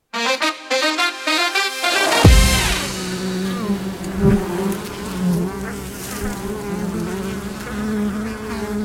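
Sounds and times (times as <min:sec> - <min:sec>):
bright tonal notes: 0:00.1 - 0:04.8
swarm of bees buzzing: 0:00.2 - 0:08.8.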